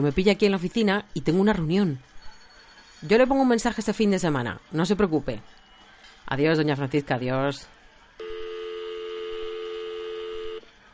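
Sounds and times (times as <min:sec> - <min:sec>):
speech: 0:00.0 - 0:02.2, 0:03.0 - 0:05.6, 0:06.3 - 0:08.3
long steady telephone dial tone: 0:08.2 - 0:10.6.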